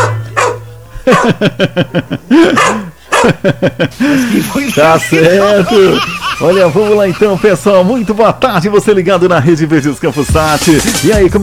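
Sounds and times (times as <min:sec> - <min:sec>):
small dog barking: 0:00.0 - 0:01.4, 0:02.6 - 0:03.4
laughter: 0:00.9 - 0:08.9
speech: 0:01.1 - 0:11.4.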